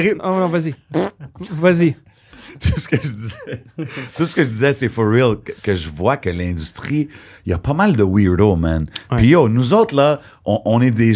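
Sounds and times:
speech: 0:00.0 - 0:11.1
short buzzy fart: 0:00.4 - 0:01.2
laughter: 0:02.4 - 0:04.6.

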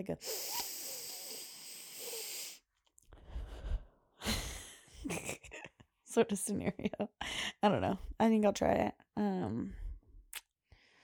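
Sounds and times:
speech: 0:00.0 - 0:00.8, 0:05.0 - 0:05.5, 0:06.1 - 0:09.8
deep breath: 0:00.2 - 0:04.5.

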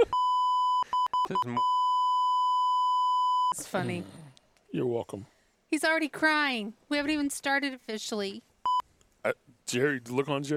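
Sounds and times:
steady loud censor bleep tone: 0:00.2 - 0:03.6
speech: 0:01.3 - 0:01.7, 0:03.5 - 0:08.5, 0:09.2 - 0:10.5.

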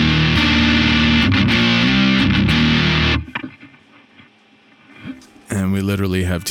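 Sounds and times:
electric guitar through overdrive pedal playing thick distorted chords: 0:00.0 - 0:03.9
speech: 0:06.1 - 0:06.5.

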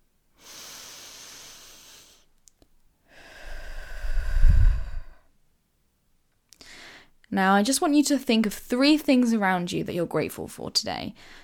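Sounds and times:
deep breath in through the nose, out through the mouth: 0:00.4 - 0:02.3, 0:03.0 - 0:05.4, 0:06.6 - 0:07.2, 0:11.2 - 0:11.4
speech: 0:07.3 - 0:11.4.

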